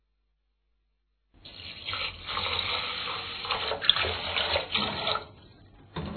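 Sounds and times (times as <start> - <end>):
water swishing and splashing as rice is rinsed in a bowl: 1.5 - 5.6.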